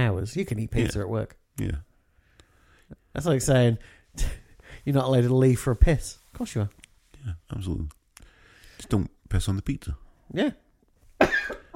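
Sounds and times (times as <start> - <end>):
speech: 0.0 - 1.9, 3.1 - 8.0, 8.8 - 10.6
person coughing: 11.2 - 11.7.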